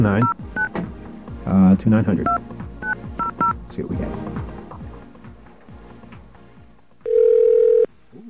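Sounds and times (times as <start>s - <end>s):
speech: 0.0s - 0.4s, 1.5s - 2.4s, 3.8s - 4.4s
electronic telephone keypad tone: 7.0s - 7.9s.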